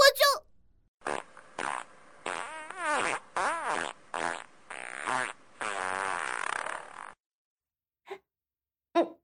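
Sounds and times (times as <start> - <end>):
person farting toward someone's face: 1.0 - 7.2.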